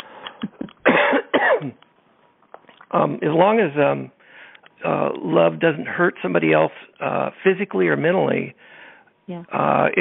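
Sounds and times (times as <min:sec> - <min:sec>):
person clearing throat because of a dry throat: 0:00.4 - 0:01.8
speech: 0:01.6 - 0:01.9, 0:02.9 - 0:04.2, 0:04.8 - 0:09.9.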